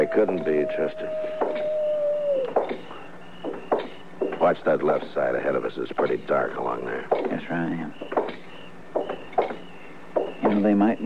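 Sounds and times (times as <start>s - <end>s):
speech: 0.0s - 1.3s, 4.4s - 8.1s, 10.6s - 11.0s
lone coyote howling far off: 0.0s - 7.2s, 7.9s - 11.0s.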